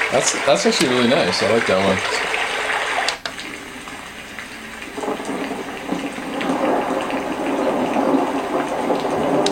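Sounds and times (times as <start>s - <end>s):
steady rain falling: 0.0s - 9.5s
speech: 0.1s - 2.5s.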